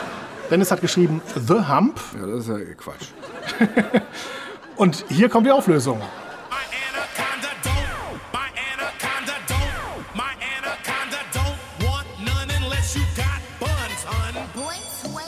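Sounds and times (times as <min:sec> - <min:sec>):
laughter: 0:00.0 - 0:09.6
speech: 0:00.5 - 0:06.2
rapped vocal line swooping and sliding in pitch: 0:06.5 - 0:14.6
punchy repeating hip-hop bass beat: 0:07.3 - 0:14.5.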